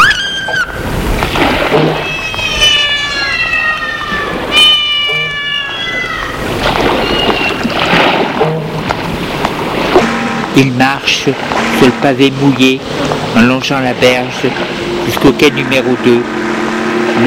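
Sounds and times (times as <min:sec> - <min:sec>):
steady wash: 0:00.0 - 0:17.2
cat meowing with drawn-out, wavering cries: 0:02.0 - 0:07.8
speech: 0:10.6 - 0:16.5.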